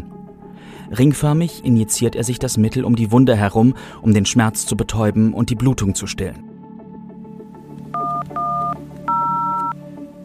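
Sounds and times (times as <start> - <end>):
speech: 0.8 - 6.5
telephone keypad dialing tones: 8.0 - 9.8.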